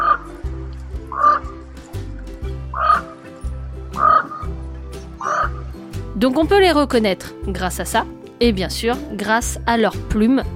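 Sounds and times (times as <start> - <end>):
common raven giving deep hoarse croaking calls: 0.0 - 5.9
speech: 6.2 - 10.5.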